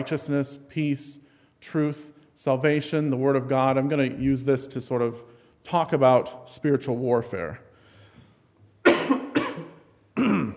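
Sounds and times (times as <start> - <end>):
speech: 0.0 - 7.7
harsh throat clearing: 8.8 - 10.5
person coughing: 8.8 - 10.5.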